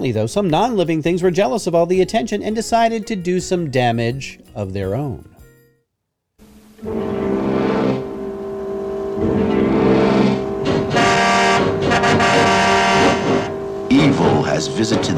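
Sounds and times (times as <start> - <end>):
speech: 0.0 - 5.3, 6.8 - 7.2, 14.6 - 15.1
car engine revving: 6.8 - 15.1.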